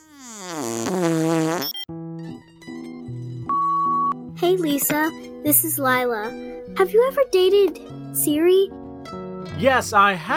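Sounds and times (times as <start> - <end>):
fart sound effect: 0.0 - 1.9
speech: 4.4 - 10.3.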